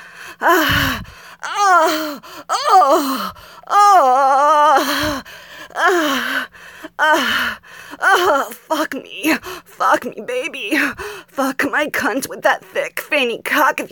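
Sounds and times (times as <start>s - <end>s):
woman gasping and moaning: 0.0s - 10.0s, 10.6s - 11.6s
speech: 0.4s - 1.0s, 1.8s - 13.8s.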